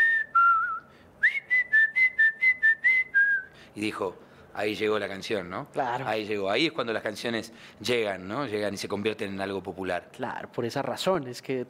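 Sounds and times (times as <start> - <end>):
person whistling a tune: 0.0 - 3.5
speech: 3.8 - 11.6.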